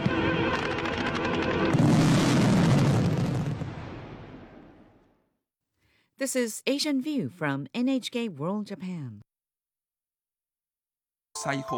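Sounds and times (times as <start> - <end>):
fireworks bursting in honour of athletes: 0.0 - 4.9
speech: 6.2 - 9.3, 11.4 - 11.7.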